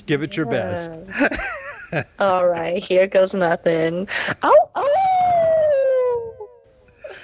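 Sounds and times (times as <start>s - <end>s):
speech: 0.1s - 4.9s
person howling like a wolf: 4.8s - 7.2s.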